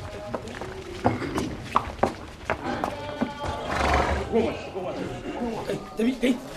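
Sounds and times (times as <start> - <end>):
hooves clip-clopping on a hard surface: 0.0 - 6.5
murmuring voices: 0.0 - 6.5
white stallion neighing: 2.6 - 5.5.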